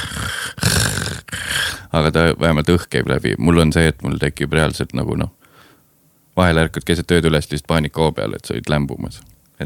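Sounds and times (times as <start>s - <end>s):
voice imitating a man's rough rasping snore: 0.0s - 1.8s
speech: 2.0s - 5.4s, 6.4s - 9.6s.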